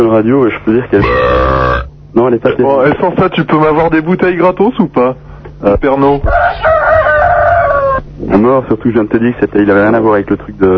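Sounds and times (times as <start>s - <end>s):
speech: 0.0s - 1.4s, 2.1s - 6.4s, 8.2s - 10.7s
low hum: 0.8s - 2.3s
rooster crowing cock-a-doodle-doo: 6.2s - 8.1s.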